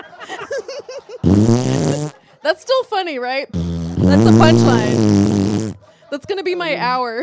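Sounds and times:
laughter: 0:00.0 - 0:02.7, 0:05.8 - 0:07.2
person blowing a mouth-made fart noise raspberry: 0:01.2 - 0:02.2, 0:03.5 - 0:05.8
speech: 0:02.5 - 0:07.2.

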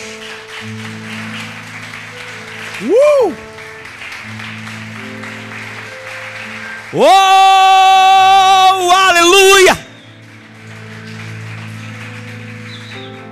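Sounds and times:
congregation applauding: 0:00.0 - 0:13.3
sustained keyboard chords: 0:00.0 - 0:13.3
speech: 0:00.6 - 0:01.2, 0:02.8 - 0:03.5, 0:06.9 - 0:07.8
person exclaiming: 0:07.0 - 0:09.8.

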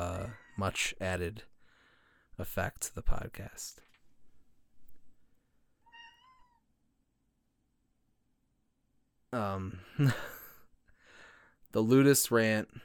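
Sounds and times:
speech: 0:00.6 - 0:01.5, 0:02.4 - 0:03.8, 0:09.3 - 0:10.4, 0:11.7 - 0:12.8
house cat yelling, meowing and yowling: 0:05.8 - 0:06.6.

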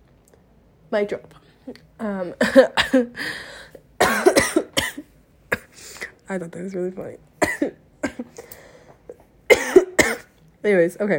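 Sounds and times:
speech: 0:00.9 - 0:03.6, 0:06.3 - 0:08.4, 0:10.6 - 0:11.1
person coughing: 0:02.4 - 0:03.2, 0:04.0 - 0:05.8, 0:07.4 - 0:08.4, 0:09.5 - 0:10.3.

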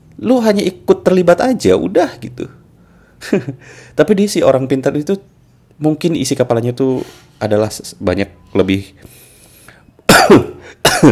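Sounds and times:
speech: 0:00.2 - 0:02.6, 0:03.2 - 0:09.2, 0:10.2 - 0:11.1
person coughing harshly: 0:10.1 - 0:11.1.

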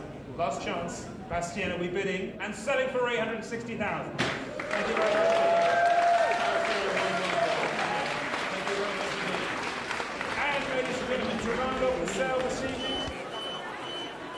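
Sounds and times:
speech: 0:00.4 - 0:05.8
auction audience clapping: 0:04.4 - 0:14.0
auction audience exclaiming and murmuring in shock: 0:04.4 - 0:14.3.

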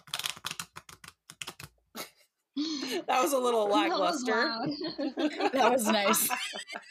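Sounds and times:
deck of cards being shuffled: 0:00.0 - 0:01.8
laughter: 0:02.6 - 0:06.8
speech: 0:02.6 - 0:06.8.

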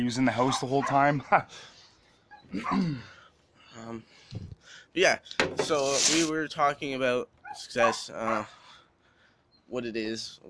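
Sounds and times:
speech: 0:00.0 - 0:01.8, 0:02.5 - 0:03.2, 0:03.8 - 0:08.6, 0:09.7 - 0:10.4
dog yelping: 0:00.4 - 0:01.1, 0:02.3 - 0:02.9, 0:07.4 - 0:08.6.

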